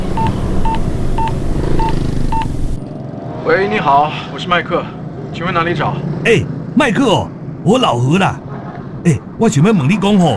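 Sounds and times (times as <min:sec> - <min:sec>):
telephone keypad dialing tones: 0:00.1 - 0:02.6
speech: 0:03.5 - 0:08.4, 0:09.0 - 0:10.3.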